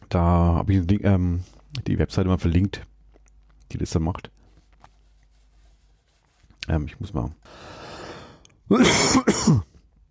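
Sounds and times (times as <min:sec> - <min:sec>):
speech: 0:00.1 - 0:02.9, 0:03.7 - 0:04.3, 0:06.7 - 0:07.8, 0:08.7 - 0:09.7
person coughing harshly: 0:08.7 - 0:09.8.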